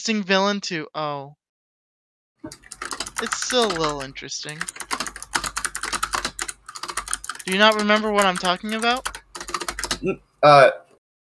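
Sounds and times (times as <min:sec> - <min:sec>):
speech: 0:00.0 - 0:01.4, 0:02.4 - 0:04.9, 0:07.5 - 0:09.2, 0:10.0 - 0:10.8
typing on a computer keyboard: 0:02.5 - 0:10.0.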